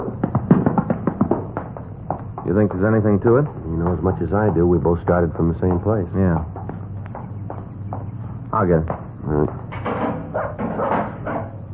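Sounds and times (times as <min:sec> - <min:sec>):
noise: 0:00.0 - 0:11.7
speech: 0:02.5 - 0:06.6, 0:08.5 - 0:09.6
dog barking inside a house: 0:10.3 - 0:11.2.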